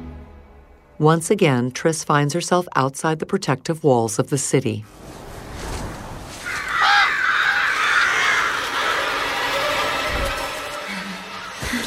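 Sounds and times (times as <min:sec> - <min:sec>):
speech: 0:01.0 - 0:05.1
flock of crows cawing: 0:06.4 - 0:11.7.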